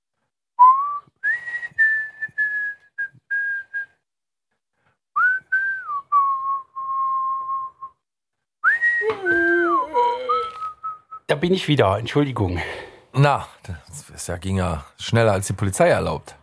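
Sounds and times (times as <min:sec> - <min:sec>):
person whistling a simple tune: 0:00.6 - 0:04.0, 0:05.2 - 0:08.0, 0:08.6 - 0:11.3
speech: 0:11.4 - 0:16.4.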